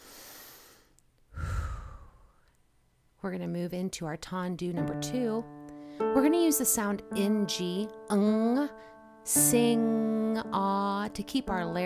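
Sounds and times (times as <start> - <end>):
deep breath in during a singing and ballet barre warm-up: 0.0 - 2.5, 5.7 - 6.1
speech: 3.2 - 11.8.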